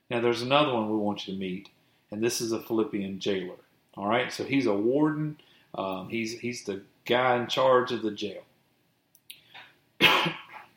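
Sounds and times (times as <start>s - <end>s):
speech: 0.1s - 8.5s
man coughing while preaching a sermon: 10.0s - 10.7s.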